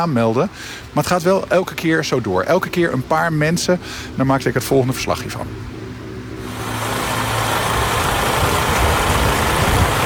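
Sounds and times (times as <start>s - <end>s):
speech: 0.0s - 5.8s
large vehicle engine rumbling: 5.6s - 10.0s.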